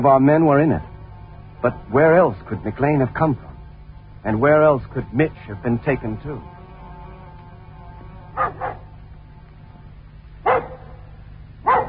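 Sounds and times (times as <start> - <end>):
speech: 0.0 - 0.9, 1.6 - 3.5, 4.2 - 6.6
low steady hum: 0.0 - 11.8
dog barking: 8.4 - 8.9, 10.4 - 11.0, 11.6 - 11.8.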